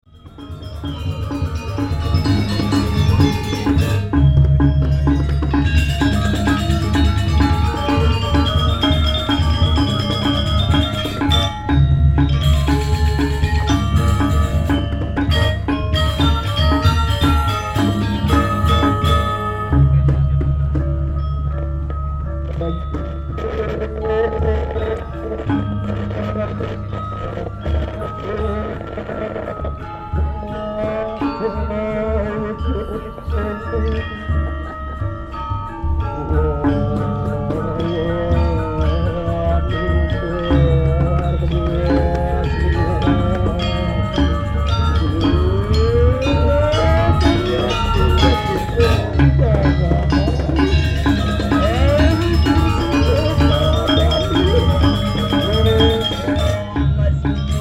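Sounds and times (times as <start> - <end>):
gamelan squelch: 0.1 - 57.5.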